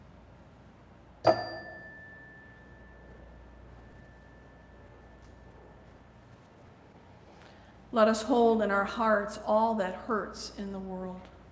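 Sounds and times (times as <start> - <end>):
single meditation chime struck, bright metallic ring: 1.3 - 5.7
speech: 7.9 - 11.3.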